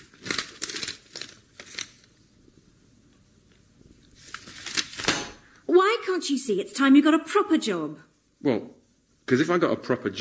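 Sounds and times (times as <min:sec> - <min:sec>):
newspaper rustling and crinkling as it is handed over: 0:00.0 - 0:02.2, 0:04.0 - 0:05.3
speech: 0:06.2 - 0:10.1.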